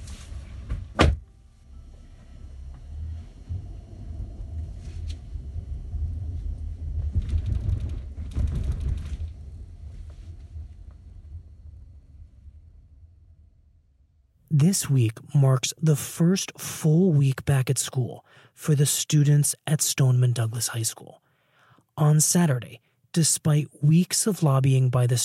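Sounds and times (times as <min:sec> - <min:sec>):
low car engine rumble: 0:01.2 - 0:13.6
creaks and shuffling as a student climbs out of a car: 0:01.8 - 0:05.4, 0:06.2 - 0:11.4
speech: 0:14.6 - 0:21.3, 0:22.0 - 0:25.2.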